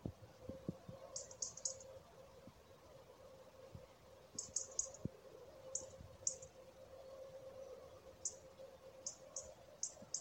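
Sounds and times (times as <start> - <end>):
background hum: 0.0 - 10.1
European robin calling with high thin notes: 1.0 - 2.0, 4.3 - 6.6, 7.6 - 10.1.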